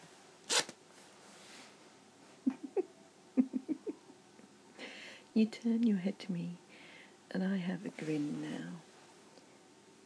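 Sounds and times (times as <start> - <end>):
trouser zipper pulled rapidly down: 0.5 - 0.8
person chuckling or giggling: 2.4 - 4.2
speech: 5.4 - 6.6, 7.3 - 8.9.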